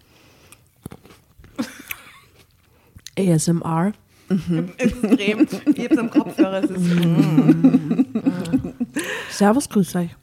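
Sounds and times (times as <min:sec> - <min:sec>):
person chewing a grape at the microphone: 0:00.4 - 0:03.2
speech: 0:03.2 - 0:10.2
laughter: 0:04.3 - 0:09.4.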